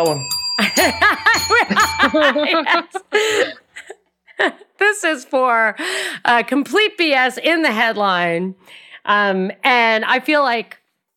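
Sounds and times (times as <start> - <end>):
small bell ringing with a shimmering tone: 0.0 - 2.7
speech: 0.0 - 3.6, 4.4 - 10.8
people chuckling: 0.6 - 4.0.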